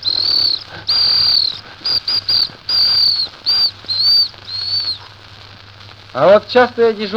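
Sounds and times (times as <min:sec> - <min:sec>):
small shrill ladies' whistle being blown: 0:00.0 - 0:05.1
speech: 0:06.2 - 0:07.1.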